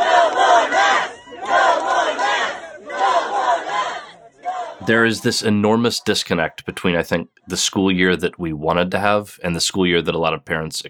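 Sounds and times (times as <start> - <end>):
angry overflow crowd shouting at a school board meeting in Tennessee: 0.0 - 8.1
speech: 4.8 - 10.8.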